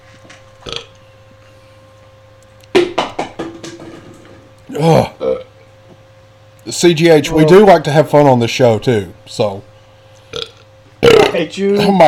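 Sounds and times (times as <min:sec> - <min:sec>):
low steady hum: 0:00.0 - 0:12.0
loud burps: 0:00.6 - 0:00.9, 0:04.7 - 0:05.5, 0:10.3 - 0:11.9
speech: 0:04.7 - 0:05.4, 0:06.6 - 0:09.7, 0:11.4 - 0:12.0.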